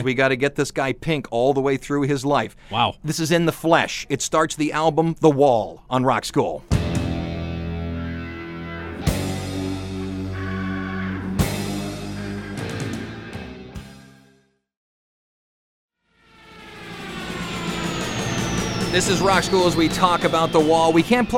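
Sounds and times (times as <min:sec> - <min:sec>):
speech: 0:00.0 - 0:06.9, 0:18.9 - 0:21.3
airplane diving with heavy engine noise: 0:06.9 - 0:13.5, 0:16.2 - 0:21.3.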